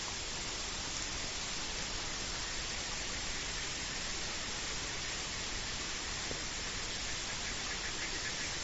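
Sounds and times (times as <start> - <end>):
gushing water: 0.0 - 8.6
frogs croaking: 2.1 - 8.6.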